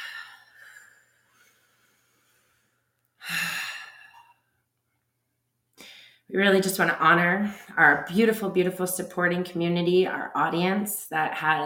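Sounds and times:
deep breathing during a grounding exercise: 0.0 - 4.5
speech: 6.3 - 11.6.

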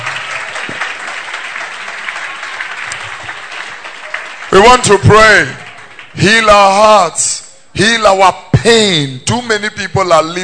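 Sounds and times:
sustained applause from a crowd: 0.0 - 6.2
speech: 4.5 - 5.6, 6.2 - 10.4.

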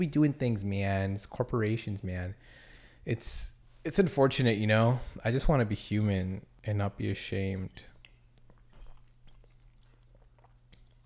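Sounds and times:
speech: 0.0 - 7.9
person chewing and swallowing food: 7.7 - 11.0.

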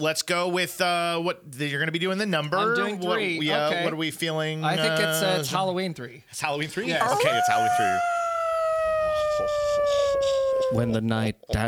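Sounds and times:
speech: 0.0 - 8.2, 10.7 - 11.6
laughter: 2.4 - 5.6, 6.7 - 9.4
wolf howling: 2.5 - 4.0, 6.8 - 11.0.

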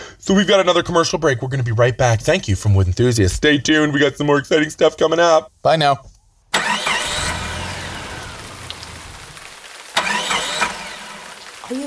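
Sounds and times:
speech: 0.2 - 6.1
car engine cranking and sputtering as it struggles to start: 6.5 - 11.6
steady rain: 6.6 - 11.8.

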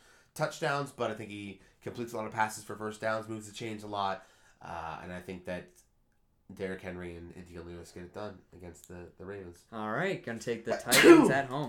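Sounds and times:
speech: 0.4 - 5.8, 6.5 - 11.6
sneeze: 10.7 - 11.4.

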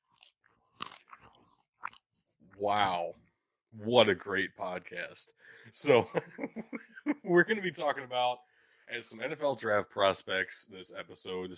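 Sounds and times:
loud crunching and chewing into the microphone: 0.0 - 2.6
speech: 2.6 - 11.5.

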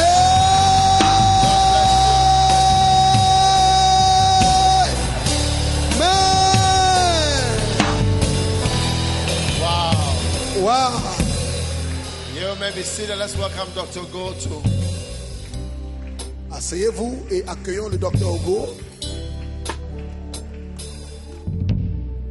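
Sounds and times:
large crowd at a religious gathering shouting amen in unison: 0.0 - 8.2
crowd cheering and whooping: 0.0 - 13.2
speech: 12.7 - 14.8, 16.6 - 18.9.

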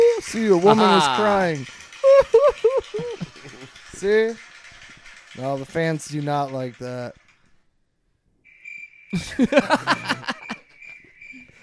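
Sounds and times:
laughter: 0.0 - 4.4, 9.2 - 10.7
speech: 0.2 - 2.5, 4.0 - 4.4, 5.4 - 7.2, 9.1 - 10.3
crickets chirping in a steady high-pitched drone: 8.4 - 11.6.

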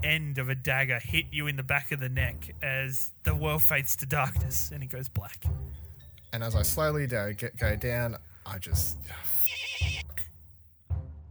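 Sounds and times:
speech: 0.0 - 10.0
horse whinnying: 9.4 - 10.2.

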